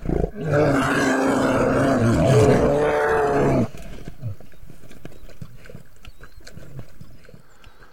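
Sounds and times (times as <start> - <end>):
grizzly bear growling while feeding on a carcass: 0.0 - 4.4.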